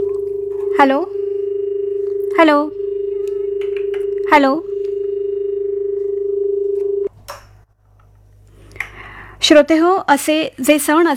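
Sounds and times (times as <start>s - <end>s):
telephone dial tone as a phone call is taken: 0.0s - 7.1s
speech: 0.8s - 1.2s, 2.4s - 2.8s, 4.3s - 4.7s, 9.5s - 11.1s.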